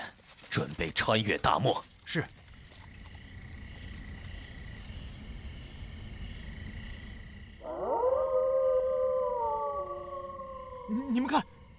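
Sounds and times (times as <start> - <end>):
speech: 0.5 - 2.4, 11.1 - 11.5
wolf pack howling together: 7.6 - 11.7.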